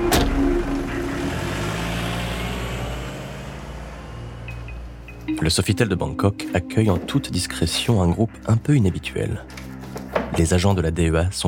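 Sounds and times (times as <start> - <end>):
car engine rumbling while driving: 0.0 - 5.3
road noise: 0.0 - 5.8
speech: 5.3 - 9.6, 10.3 - 11.4.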